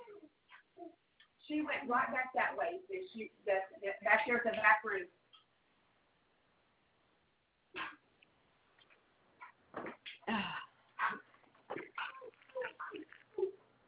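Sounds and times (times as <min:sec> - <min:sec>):
speech: 0:01.7 - 0:05.2
dogs yelping and barking indoors: 0:11.0 - 0:13.5.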